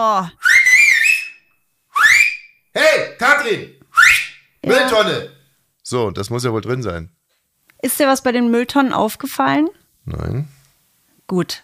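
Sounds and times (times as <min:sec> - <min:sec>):
speech: 0:00.0 - 0:00.4, 0:03.4 - 0:03.8, 0:04.6 - 0:05.3, 0:05.9 - 0:07.2, 0:07.8 - 0:10.6, 0:11.3 - 0:11.6
person whistling command signal calls: 0:00.4 - 0:02.6, 0:03.8 - 0:04.4.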